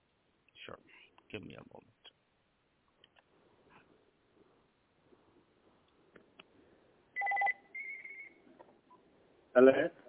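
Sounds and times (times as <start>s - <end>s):
speech: 1.3s - 2.1s, 9.6s - 10.0s
two short clear electronic telephone tones: 7.2s - 8.4s.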